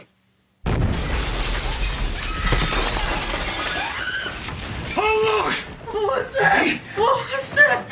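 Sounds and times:
explosion with deep rumbling roar in a film scene: 0.6 - 6.8
crackling debris: 0.6 - 7.8
shattering glass: 0.9 - 5.8.

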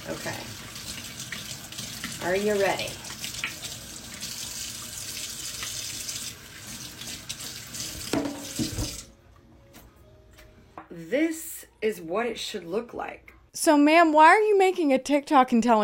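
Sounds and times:
hot water running from a faucet into a sink: 0.0 - 9.1
speech: 2.2 - 3.0, 11.1 - 15.8.

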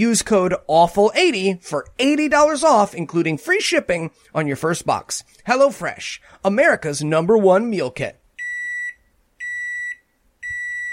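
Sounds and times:
speech: 0.0 - 8.2
faint room noise: 0.0 - 10.9
microwave oven beeping: 8.4 - 10.9.

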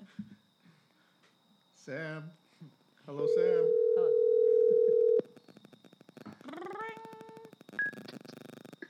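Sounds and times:
speech: 1.8 - 4.2
electronic ring tone on an outgoing phone line: 3.2 - 5.2
faint phone line crackle: 5.2 - 8.8.

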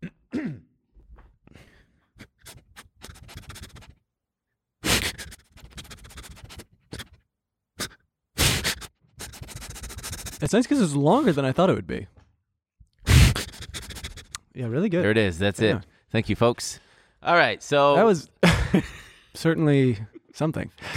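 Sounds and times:
person imitating a dog sniffing: 2.2 - 4.0, 4.8 - 7.2, 7.8 - 10.5, 13.0 - 14.5
speech: 10.4 - 12.2, 14.6 - 20.9.

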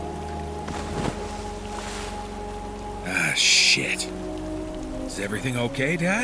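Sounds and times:
fishing boat engine humming: 0.0 - 5.1
splash of something falling overboard from a fishing boat into water: 0.6 - 2.3
speech: 3.4 - 4.3, 5.2 - 6.2.

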